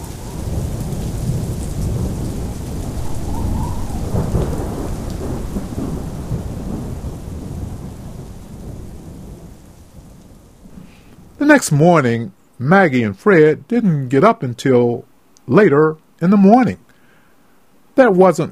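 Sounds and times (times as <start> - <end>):
deep rumbling gusts of wind in a night storm: 0.0 - 12.1
dense rain pounding down in a night storm: 0.0 - 16.9
speech: 11.5 - 16.8, 18.0 - 18.5.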